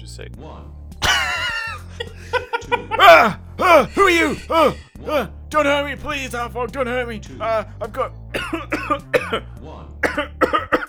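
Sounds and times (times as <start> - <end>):
speech: 0.2 - 1.0, 2.0 - 10.5
man coughing harshly in panic: 1.0 - 1.8, 3.0 - 5.3, 8.4 - 9.4, 10.0 - 10.8
laughter: 1.0 - 5.3
raspy wheezing breath: 3.0 - 5.3.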